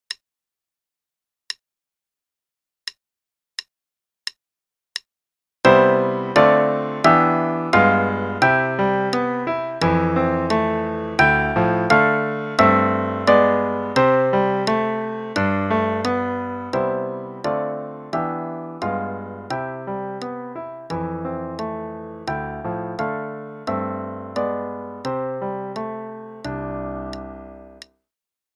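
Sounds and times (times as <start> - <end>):
C scale in both parts: 5.7 - 27.8.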